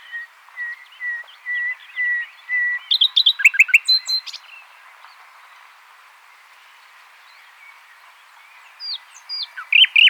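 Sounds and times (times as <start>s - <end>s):
Common nightingale Luscinia megarhynchos singing: 0.0s - 4.6s, 8.8s - 10.0s.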